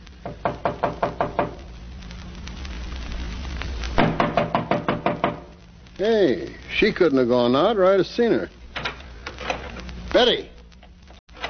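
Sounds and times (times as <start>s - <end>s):
low hissing noise: 0.0s - 11.4s
sharp knocking on a door: 0.2s - 1.6s, 4.0s - 5.5s
speech: 6.0s - 8.6s, 10.2s - 10.5s.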